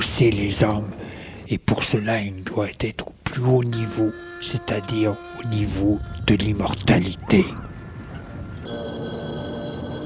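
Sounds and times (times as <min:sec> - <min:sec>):
speech: 0:00.2 - 0:07.7
telephone ringing with an electronic tone: 0:08.6 - 0:10.0.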